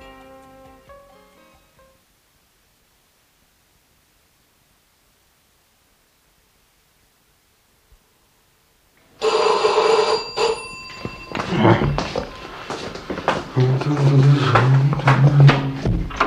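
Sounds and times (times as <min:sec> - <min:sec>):
indoor noises: 0:09.0 - 0:16.2
shrill electric doorbell ringing: 0:09.2 - 0:12.6
voices: 0:11.2 - 0:12.7, 0:13.3 - 0:16.0.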